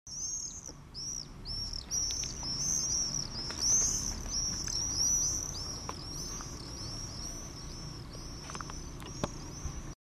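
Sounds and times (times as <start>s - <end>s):
common swift Apus apus calling: 0.1s - 10.0s.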